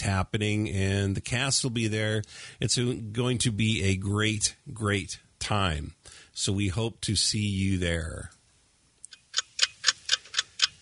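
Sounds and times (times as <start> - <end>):
speech: 0.1 - 8.4
clock ticking: 9.1 - 10.7.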